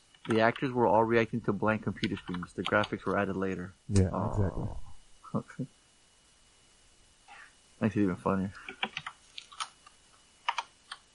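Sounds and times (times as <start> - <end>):
fast typing on a computer keyboard: 0.2 - 0.7, 1.9 - 3.2, 8.6 - 9.8, 10.5 - 11.1
speech: 0.3 - 5.8, 7.8 - 8.9.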